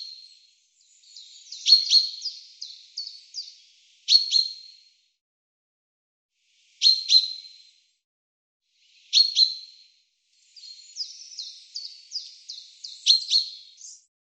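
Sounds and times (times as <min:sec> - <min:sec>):
bird chirps: 0:00.0 - 0:04.9, 0:06.7 - 0:07.8, 0:08.9 - 0:14.1.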